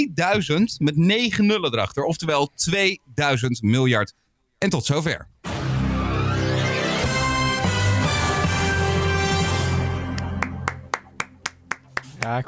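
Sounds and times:
speech: 0:00.0 - 0:05.3, 0:12.2 - 0:12.4
dense loud music: 0:05.5 - 0:11.4
sharp hand claps: 0:10.1 - 0:12.4.

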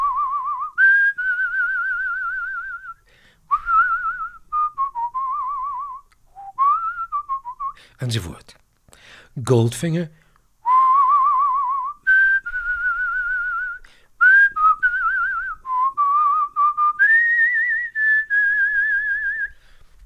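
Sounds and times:
person whistling a slow wavering melody with vibrato: 0:00.0 - 0:07.8, 0:10.6 - 0:19.6
speech: 0:08.0 - 0:08.6, 0:09.4 - 0:10.2.

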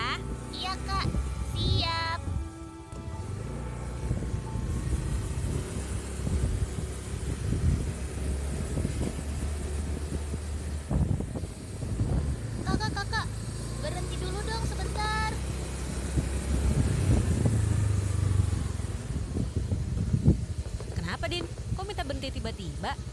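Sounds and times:
motorcycle riding along a quiet road at night: 0:00.0 - 0:23.1
rushing wind noise: 0:00.0 - 0:23.1
speech: 0:21.2 - 0:21.6, 0:22.2 - 0:23.1.

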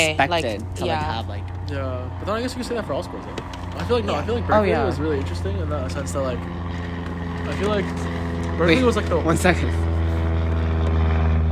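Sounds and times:
speech: 0:00.0 - 0:06.9, 0:07.5 - 0:09.9
propeller airplane engine drone passing overhead: 0:00.0 - 0:11.5.

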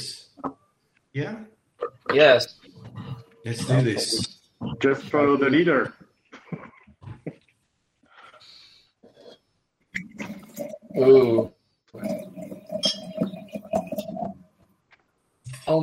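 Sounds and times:
speech: 0:01.2 - 0:02.6, 0:03.4 - 0:06.0, 0:11.0 - 0:12.1, 0:15.7 - 0:15.8
water pouring into a glass: 0:10.0 - 0:14.5
light glass clinks: 0:12.7 - 0:13.4.

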